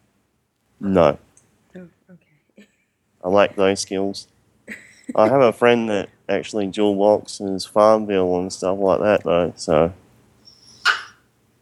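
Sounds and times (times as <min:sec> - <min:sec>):
quiet hum: 0:00.0 - 0:11.6
speech: 0:00.8 - 0:01.2, 0:01.8 - 0:02.0, 0:03.2 - 0:10.0
dog giving a short sharp bark: 0:10.7 - 0:11.2.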